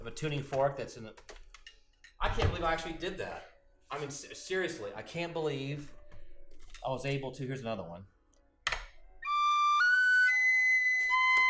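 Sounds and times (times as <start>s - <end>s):
speech: 0.1s - 1.4s, 2.2s - 6.0s, 6.8s - 8.1s
penny whistle playing sustained breathy notes: 9.2s - 11.4s.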